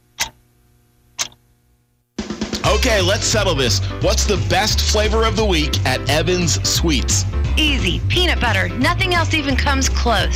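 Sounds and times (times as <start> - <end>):
clock ticking: 0.2 - 0.4
speech: 2.8 - 10.3.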